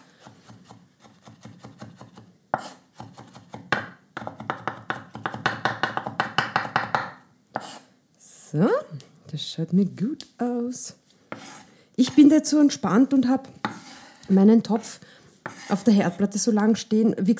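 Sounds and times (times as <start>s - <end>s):
knife chopping food on a board for a fake risotto: 0.2s - 7.8s
speech: 8.5s - 11.0s, 12.0s - 13.6s, 14.3s - 15.1s, 15.7s - 17.3s.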